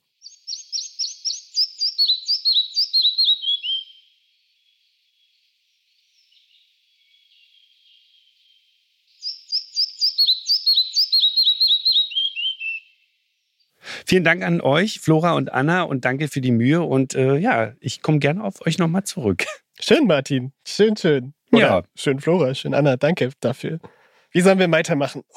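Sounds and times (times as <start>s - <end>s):
Red-breasted Flycatcher singing quick bright descending repeated notes: 0.0s - 13.7s
speech: 14.1s - 25.3s.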